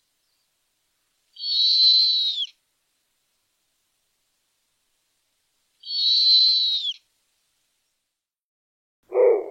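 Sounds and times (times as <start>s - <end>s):
captive snowy owl whistling: 1.4s - 2.6s, 5.8s - 7.0s
captive snowy owl hoarse note: 9.1s - 9.4s.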